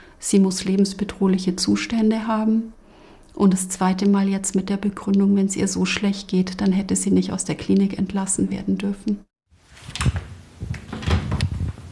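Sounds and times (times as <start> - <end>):
speech: 0.2 - 2.8, 3.4 - 9.3
bedroom door being carefully opened with wooden clunks and creaks: 9.9 - 11.6.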